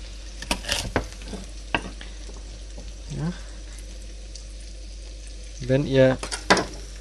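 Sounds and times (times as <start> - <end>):
halved asparagus sizzling in a pan with butter and olive oil: 0.0 - 7.0
clacks and scrapes of asparagus being stirred or turned in a pan: 0.4 - 1.9
speech: 3.2 - 3.5, 5.7 - 6.3.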